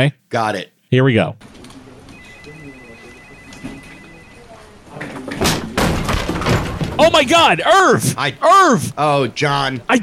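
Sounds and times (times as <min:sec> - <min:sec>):
speech: 0:00.0 - 0:01.6, 0:07.0 - 0:10.0
quiet murmur: 0:01.4 - 0:09.9
office door banging open: 0:05.2 - 0:07.2.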